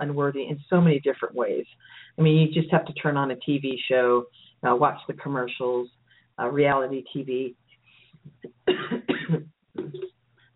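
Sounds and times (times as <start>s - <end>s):
speech: 0.0s - 7.6s
person with a lingering cough and strained vocal cords coughing: 8.6s - 10.1s.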